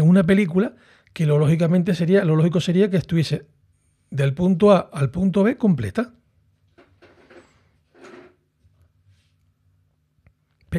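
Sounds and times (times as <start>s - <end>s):
speech: 0.2s - 3.5s, 4.1s - 6.2s
footrest being shifted, scraping and rubbing: 6.8s - 8.4s.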